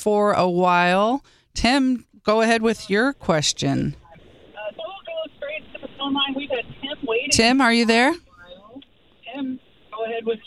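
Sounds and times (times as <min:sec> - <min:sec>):
speech: 0:00.0 - 0:04.0, 0:06.0 - 0:08.3, 0:09.4 - 0:10.4
radio playing in the background over a telephone line: 0:02.4 - 0:10.4.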